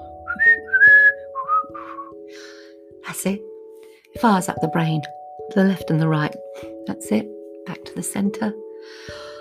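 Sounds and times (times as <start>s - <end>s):
people whistling: 0.3s - 2.2s
speech: 3.2s - 3.5s, 4.2s - 6.4s, 7.0s - 9.2s.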